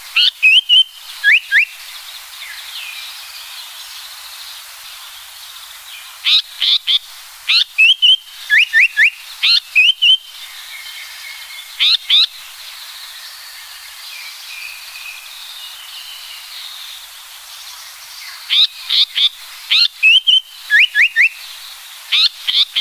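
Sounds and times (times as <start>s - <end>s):
Japanese paradise flycatcher song with scratchy notes and rising whistles: 0.2s - 1.7s, 7.8s - 9.2s, 19.8s - 21.4s
soft background birdsong: 0.2s - 7.0s, 7.8s - 22.8s.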